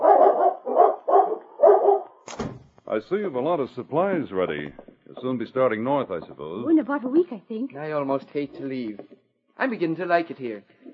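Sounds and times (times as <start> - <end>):
large dogs barking: 0.0 - 2.2
speech: 2.9 - 10.8.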